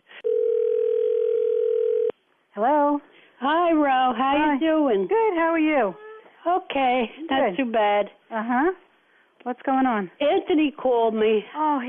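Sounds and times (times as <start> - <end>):
telephone dial tone while dialing: 0.2 - 2.1
speech: 2.6 - 8.8, 9.4 - 11.8.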